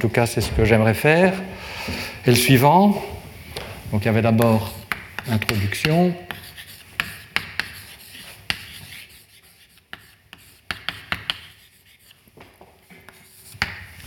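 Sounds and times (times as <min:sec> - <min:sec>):
speech: 0:00.0 - 0:03.2, 0:03.9 - 0:06.4
writing on a board during a physics lecture: 0:04.3 - 0:14.0.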